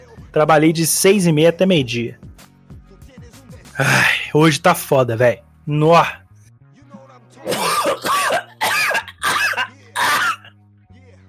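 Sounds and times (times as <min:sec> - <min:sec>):
speech: 0:00.4 - 0:02.2, 0:03.8 - 0:06.2
person coughing repeatedly: 0:07.5 - 0:10.5.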